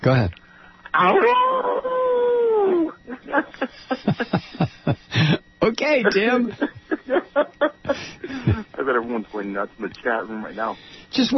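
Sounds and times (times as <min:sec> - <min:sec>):
speech: 0:00.0 - 0:01.8, 0:03.1 - 0:11.3
person imitating a coyote howl: 0:00.9 - 0:03.0
laughter: 0:01.6 - 0:05.4, 0:06.1 - 0:08.8.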